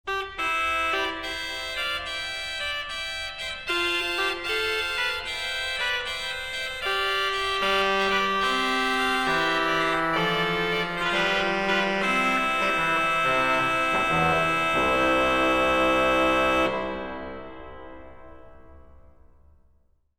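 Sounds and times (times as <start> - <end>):
Spanish trumpet: 0.1 - 18.8
organ: 5.3 - 18.1.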